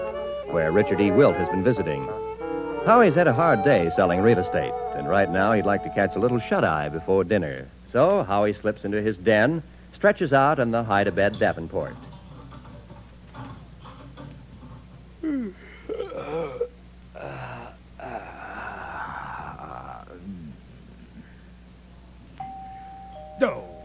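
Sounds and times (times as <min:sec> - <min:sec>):
speech: 0:00.5 - 0:12.1
house doorbell ringing with electric tone and ding: 0:22.4 - 0:23.8.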